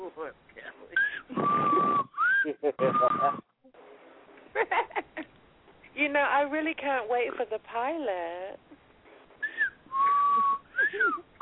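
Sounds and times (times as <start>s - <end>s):
speech: 0.1s - 1.5s, 6.0s - 8.6s
person whistling: 1.0s - 3.5s, 9.4s - 11.3s.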